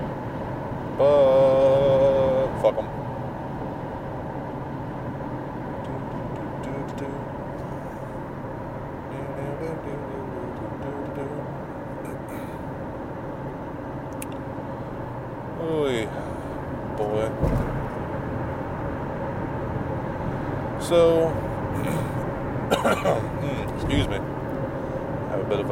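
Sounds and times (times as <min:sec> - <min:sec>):
car road rumble at highway speed: 0:00.0 - 0:25.7
speech: 0:20.9 - 0:21.2.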